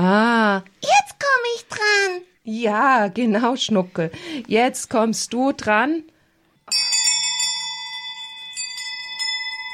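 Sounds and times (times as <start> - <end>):
speech: 0.1 - 1.0, 2.5 - 6.1
altar hand bell ringing: 6.6 - 9.7.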